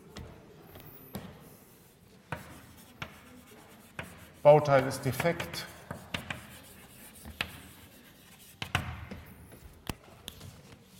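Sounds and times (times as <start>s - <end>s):
chalk or marker scratching and tapping on a board: 1.5s - 9.4s
speech: 4.4s - 5.8s.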